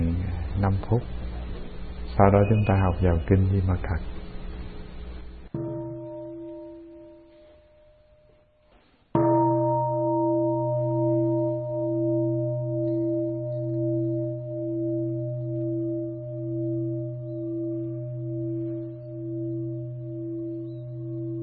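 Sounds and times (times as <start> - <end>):
speech: 0.6 - 1.2, 2.2 - 4.2
meditation bell struck before sitting meditation: 2.2 - 3.4, 5.5 - 8.5, 9.2 - 21.4.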